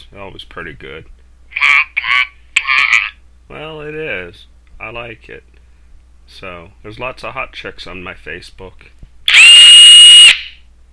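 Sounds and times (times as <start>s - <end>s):
speech: 0.1s - 1.2s, 3.5s - 5.6s, 6.3s - 9.0s
power drill whining: 9.3s - 10.4s.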